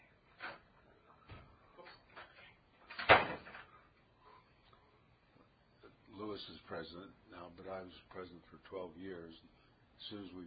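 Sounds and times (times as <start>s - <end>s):
office door being unlatched and swung open: 1.3s - 3.7s
speech: 6.4s - 10.4s.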